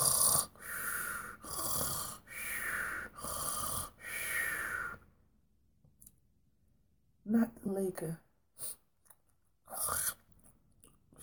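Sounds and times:
loud rasping snoring: 0.0 - 4.6
speech: 7.3 - 8.3.

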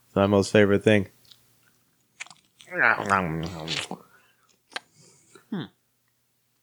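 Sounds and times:
speech: 0.2 - 1.2, 2.7 - 4.0, 5.5 - 5.8
soy-sauce-flavoured beef jerky crunching between the teeth: 2.0 - 4.9.

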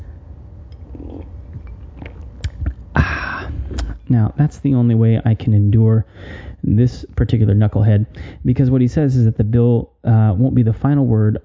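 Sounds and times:
sipping bourbon on the rocks: 0.7 - 2.8
swallowing noises: 0.8 - 4.0
speech: 4.1 - 11.4.

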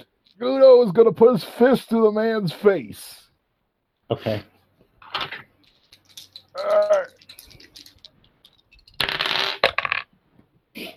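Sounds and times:
speech: 0.4 - 3.2, 4.1 - 4.5
dice rolling across a hard tabletop: 5.0 - 10.2.

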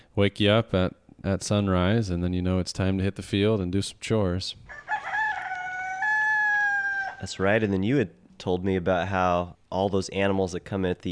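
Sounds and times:
speech: 0.2 - 5.2, 7.2 - 11.1
rooster crowing cock-a-doodle-doo: 4.7 - 7.4.

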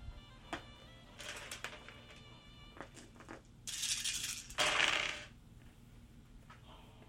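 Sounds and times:
dice rattling across a hard tabletop: 1.2 - 1.9, 2.9 - 5.4.

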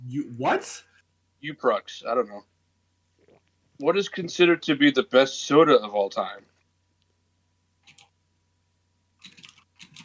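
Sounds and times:
low steady hum: 0.0 - 10.0
speech: 0.1 - 2.5, 3.8 - 6.5
typing on a computer keyboard: 9.2 - 10.0.

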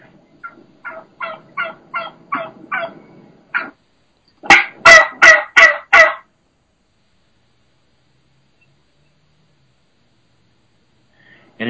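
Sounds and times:
turkeys yelping in the open: 0.4 - 3.8, 4.4 - 6.3.

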